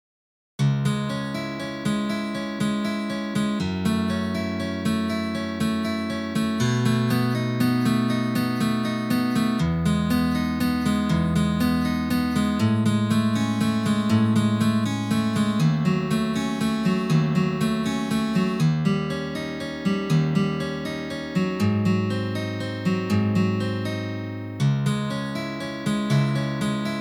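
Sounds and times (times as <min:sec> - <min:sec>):
film melody on guitar: 0:00.6 - 0:26.9.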